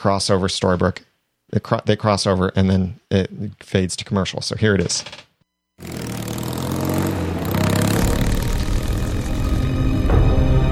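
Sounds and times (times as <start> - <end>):
speech: 0.0 - 6.2
motorcycle engine droning on a road: 5.8 - 10.6
odd whooshing vroom surges: 6.0 - 10.6.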